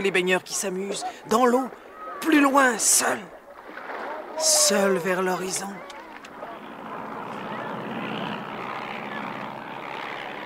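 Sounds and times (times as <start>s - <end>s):
speech: 0.0s - 3.4s, 4.4s - 5.9s
small yellow propeller plane droning overhead over a beach: 4.5s - 10.4s.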